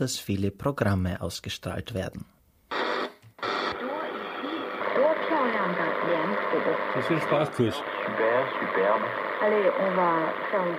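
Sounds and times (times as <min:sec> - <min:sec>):
speech: 0:00.0 - 0:02.3, 0:05.6 - 0:10.7
shortwave radio static and hiss while tuning: 0:02.7 - 0:10.7
steady crackling shortwave radio noise: 0:02.7 - 0:10.7
voices on shortwave radio: 0:03.8 - 0:10.7.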